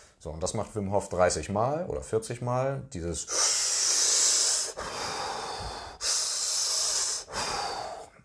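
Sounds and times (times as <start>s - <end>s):
speech: 0.2s - 3.7s
deep rhythmic breathing into belly and chest: 3.3s - 8.2s.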